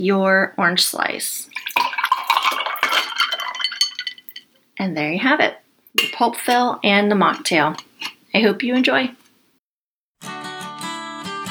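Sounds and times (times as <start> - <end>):
speech: 0.0 - 1.7, 4.8 - 9.2
liquid pouring from a cocktail shaker into a glass: 1.5 - 4.5
small clinks: 2.8 - 4.6.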